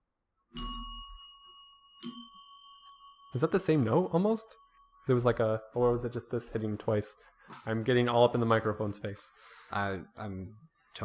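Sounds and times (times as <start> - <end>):
bell struck by smacking down on top, metallic ding: 0.6 - 5.5
speech: 3.3 - 11.0.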